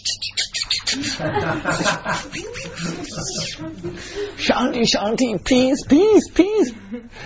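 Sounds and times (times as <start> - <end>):
birds chirping in the Himalayan mountains in summer: 0.0 - 3.6
laughter: 0.9 - 7.1
speech: 1.0 - 7.2.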